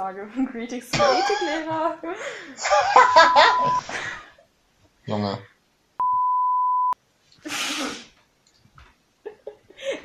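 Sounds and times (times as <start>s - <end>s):
speech: 0.0s - 4.2s, 5.0s - 5.5s
laughter: 2.6s - 4.2s
censor bleep over explicit words: 3.0s - 3.8s, 6.0s - 7.0s.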